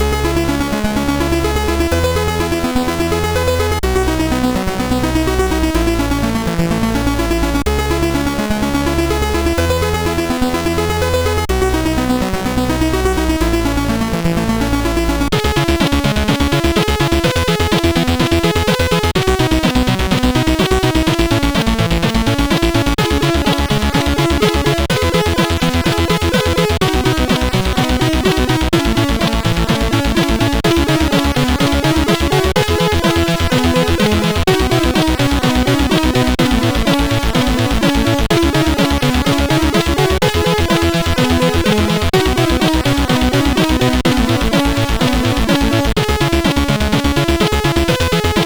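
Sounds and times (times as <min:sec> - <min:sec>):
chiptune remix on a SID chip: 0:00.0 - 0:48.4.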